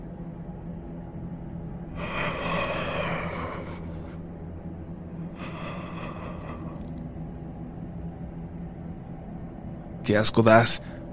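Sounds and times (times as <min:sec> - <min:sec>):
steady low hum on a telephone line: 0:00.0 - 0:10.1
heavy agitated breathing over a telephone line: 0:02.0 - 0:04.3, 0:05.3 - 0:07.0
speech: 0:10.1 - 0:11.0.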